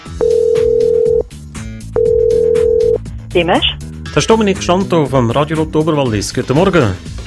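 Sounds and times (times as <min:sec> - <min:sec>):
soft music: 0:00.0 - 0:07.2
telephone ringback tone after dialing a call: 0:00.1 - 0:03.1
speech: 0:03.4 - 0:07.2.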